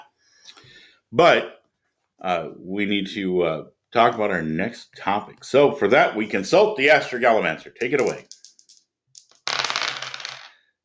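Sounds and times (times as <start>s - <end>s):
speech: 1.1s - 1.6s, 2.2s - 8.4s
dice rolled across a hard surface: 7.8s - 10.6s.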